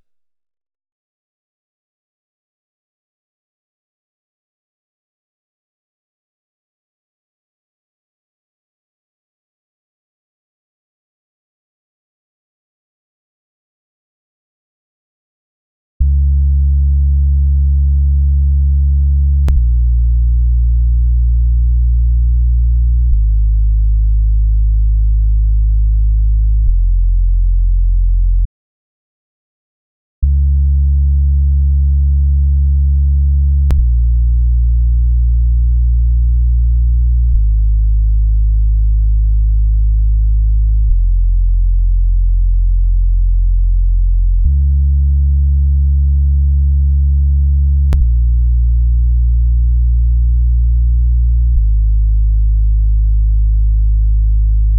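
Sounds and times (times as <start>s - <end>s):
racing bass: 16.0s - 28.5s, 30.2s - 54.7s.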